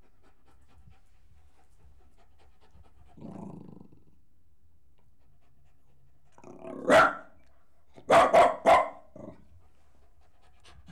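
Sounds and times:
Jack Russell Terrier crossed with Corgi barking: 6.8 - 7.3, 8.0 - 9.1.

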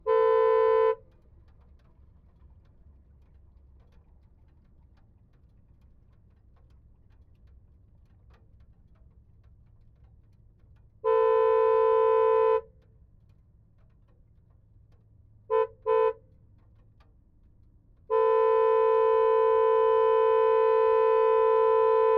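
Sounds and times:
Porsche 997 GT3 RS 2008 horn: 0.0 - 1.0, 11.0 - 12.7, 15.5 - 16.2, 18.1 - 22.1.

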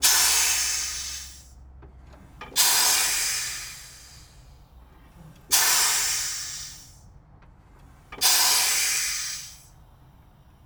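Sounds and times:
1943 Spitfire Mk IX air release brakes: 0.0 - 1.5, 2.6 - 4.5, 5.5 - 7.0, 8.2 - 9.8.

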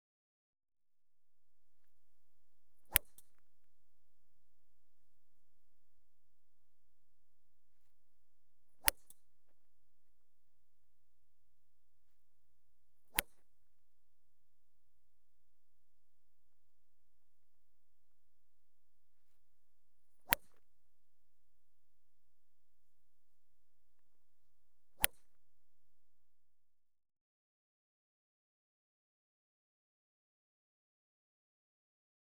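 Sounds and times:
golf driving shots: 1.5 - 26.1.

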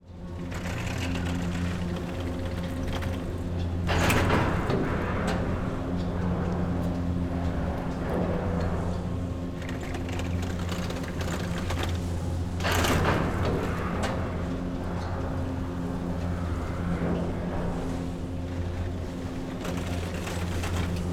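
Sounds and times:
multiple medium size gondolas passing by: 0.1 - 21.1
mountain ski station mechanism: 0.4 - 4.8, 9.5 - 14.2, 18.7 - 21.1.

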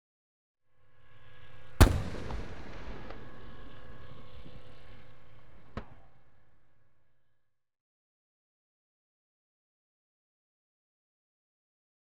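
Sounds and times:
Scorpion tank firing HESH rounds: 1.7 - 6.6.

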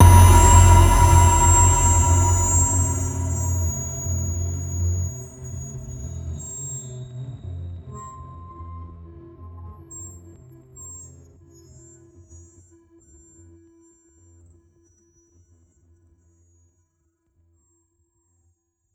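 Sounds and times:
disturbed cinematic impacts: 0.0 - 5.6.

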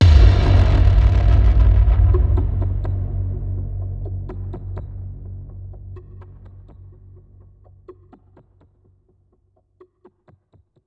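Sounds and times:
deep sci-fi cinematic impacts: 0.0 - 8.3.

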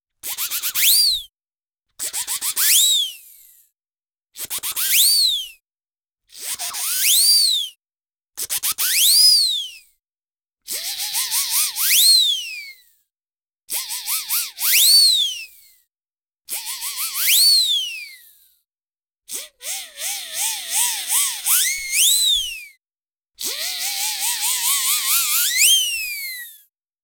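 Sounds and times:
multiple cartoon whistles zipping up very high and down: 0.3 - 1.2, 2.5 - 3.1, 6.5 - 7.7, 8.8 - 9.7, 11.1 - 12.7, 13.7 - 15.7, 16.5 - 18.4, 19.3 - 22.8, 23.4 - 26.6.

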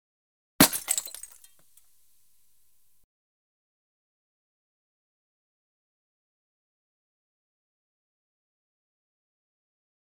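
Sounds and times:
glass beer bottle breaking: 0.6 - 1.8.

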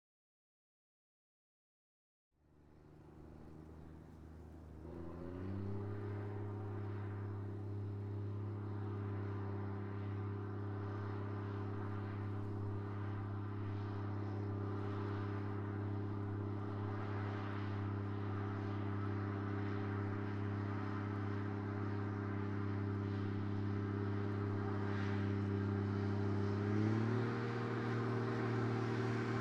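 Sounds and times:
tractor engine running at steady high RPMs heard from outside: 2.5 - 29.3.

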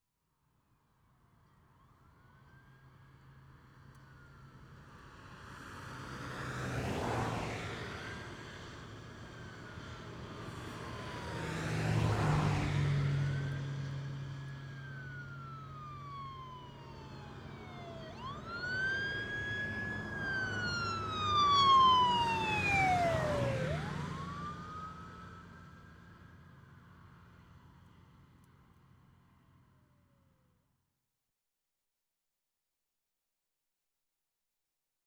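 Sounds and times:
police car with emergency siren passing at high speed right to left: 6.5 - 7.6, 10.8 - 25.9.

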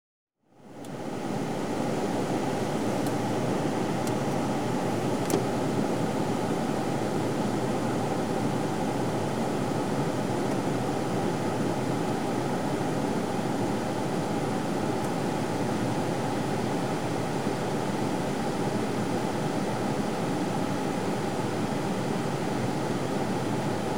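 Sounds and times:
car interior heating fan on auto: 0.6 - 23.8.

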